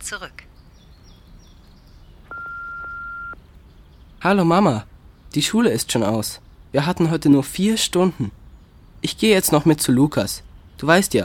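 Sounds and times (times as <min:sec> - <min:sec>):
speech: 0:00.1 - 0:00.5, 0:04.2 - 0:08.4, 0:09.0 - 0:11.2
quiet hiss: 0:00.1 - 0:11.2
answering machine electronic beep: 0:02.3 - 0:03.4.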